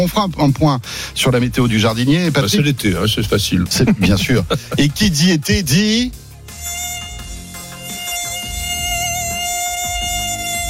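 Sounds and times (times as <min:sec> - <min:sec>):
speech: 0:00.0 - 0:06.2
laughter: 0:03.7 - 0:05.2
high-pitched mosquito whine: 0:06.5 - 0:10.6.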